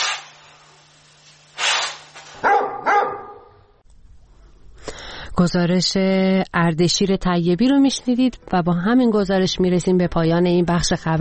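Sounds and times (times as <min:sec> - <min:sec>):
dog barking: 0:02.3 - 0:03.6
speech: 0:05.4 - 0:11.1.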